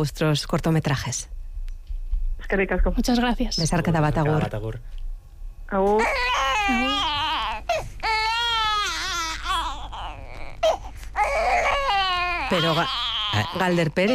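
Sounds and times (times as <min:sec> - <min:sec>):
speech: 0:00.0 - 0:01.4, 0:02.4 - 0:05.0, 0:05.7 - 0:06.8, 0:12.5 - 0:14.1
baby crying and fussing: 0:05.9 - 0:14.1.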